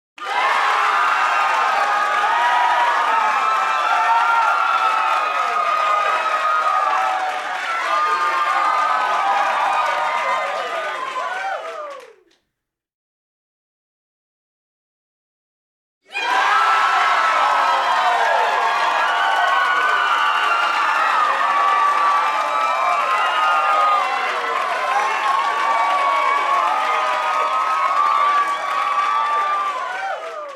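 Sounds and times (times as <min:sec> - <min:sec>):
people screaming: 0:00.2 - 0:12.1, 0:16.1 - 0:30.5
people cheering: 0:00.2 - 0:12.3, 0:16.0 - 0:30.5.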